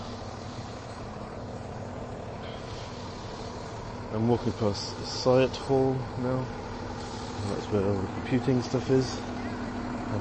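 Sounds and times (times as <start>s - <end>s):
broadband road noise: 0.0s - 10.1s
lorries and delivery vehicles rumbling past on a nearby street: 0.0s - 10.1s
speech: 4.1s - 6.7s, 7.4s - 9.4s.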